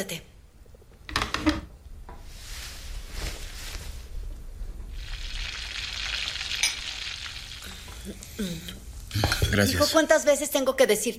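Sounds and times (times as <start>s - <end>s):
speech: 0.0s - 0.3s, 9.6s - 11.1s
stovetop coffee pot hissing and sizzling as it heats: 2.2s - 10.1s.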